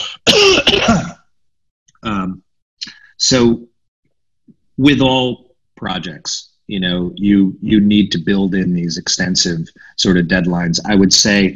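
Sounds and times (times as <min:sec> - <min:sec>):
person clearing throat with a cough: 0:00.0 - 0:01.2
speech: 0:03.3 - 0:03.7, 0:04.8 - 0:11.5.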